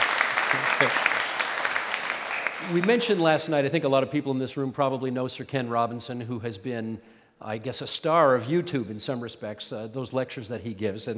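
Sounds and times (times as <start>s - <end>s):
audience applause at a lecture event: 0.0s - 3.2s
speech: 0.5s - 1.1s, 2.6s - 11.1s.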